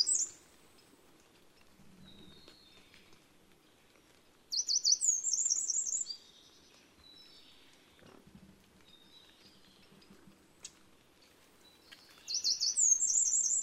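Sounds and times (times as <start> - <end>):
Eurasian wren song: 0.0 - 0.4, 4.5 - 6.5, 11.8 - 13.6
faint background noise: 0.0 - 13.6.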